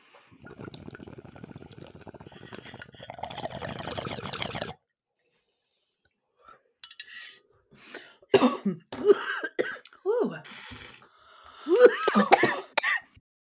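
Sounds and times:
water bubbling in a bong during a hit: 0.3s - 4.8s
harsh coughing after a bong hit: 8.3s - 9.8s, 11.7s - 13.2s.

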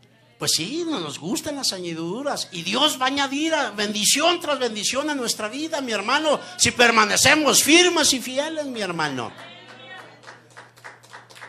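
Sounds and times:
speech: 0.4s - 9.6s
audience clapping in a steady rhythm: 9.0s - 11.4s.

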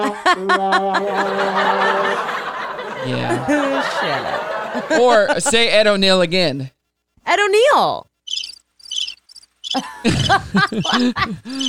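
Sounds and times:
speech: 0.0s - 2.4s, 3.0s - 8.1s, 9.7s - 11.6s
laughter: 0.0s - 5.8s, 9.8s - 11.6s
crickets chirping in high trilling bursts: 8.2s - 11.6s.

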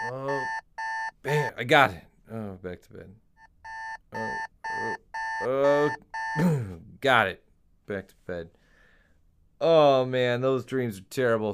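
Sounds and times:
electronic alarm clock beeping: 0.0s - 1.6s, 3.4s - 6.4s
speech: 1.2s - 3.2s, 4.1s - 8.6s, 9.6s - 11.5s.

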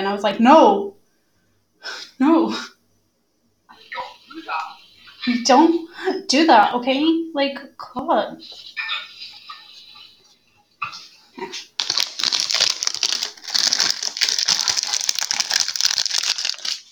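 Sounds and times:
speech: 0.0s - 1.0s, 1.8s - 2.7s, 5.2s - 9.1s, 10.9s - 11.7s
puff pastry plastic packaging crinkling: 11.8s - 16.9s.

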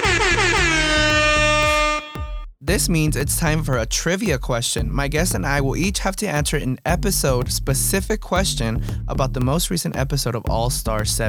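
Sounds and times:
air horn blaring: 0.0s - 2.5s
speech: 2.7s - 11.2s.

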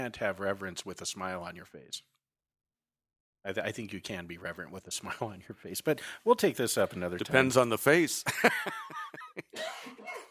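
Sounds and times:
speech: 0.0s - 2.2s, 3.4s - 10.3s
laughter: 8.2s - 10.3s
person coughing harshly: 9.6s - 10.3s.

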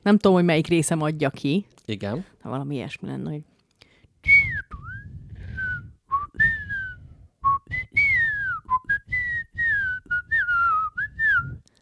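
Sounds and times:
speech: 0.0s - 3.5s
person whistling in imitation of a wind-borne sound: 4.2s - 11.7s.

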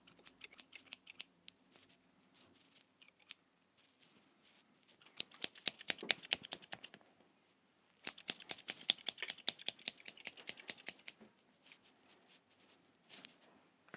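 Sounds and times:
scissors cutting: 0.0s - 1.3s, 5.0s - 7.0s, 8.0s - 11.2s.

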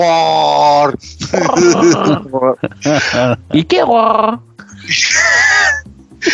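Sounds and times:
speech: 0.0s - 6.3s
laughter: 1.0s - 3.6s, 4.8s - 6.3s
person imitating a creature's long throaty growl: 1.3s - 3.5s, 4.7s - 5.8s.

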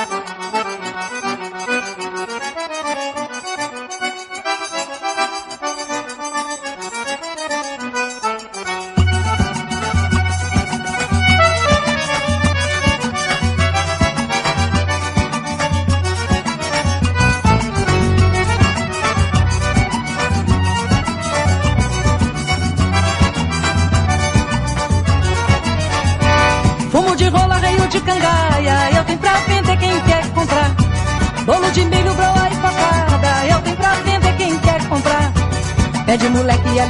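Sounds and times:
Brazilian popular song recording with full band and driving bass: 0.0s - 36.8s.

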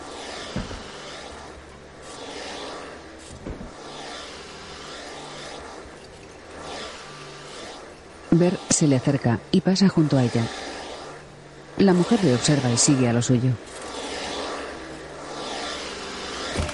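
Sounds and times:
vacuum cleaner run by a woman: 0.0s - 16.7s
vacuum cleaner bumps: 0.4s - 1.0s, 3.3s - 3.8s, 16.4s - 16.7s
speech: 8.4s - 10.7s, 11.8s - 13.9s.

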